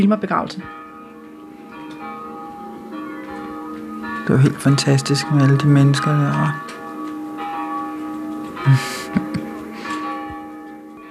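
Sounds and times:
speech: 0:00.0 - 0:00.8, 0:04.3 - 0:06.8, 0:08.6 - 0:09.3
church bells ringing at a funeral in Vesterbro: 0:00.0 - 0:11.0
laughter: 0:08.7 - 0:09.6.

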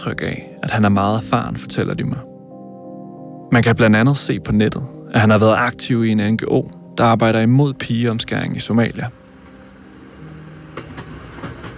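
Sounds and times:
speech: 0:00.0 - 0:02.3, 0:03.5 - 0:09.2
train from Fredericia station toward Frankfurt rumbling along tracks: 0:09.4 - 0:11.7
clickety-clack of train wheels over rail joints: 0:10.7 - 0:11.7.

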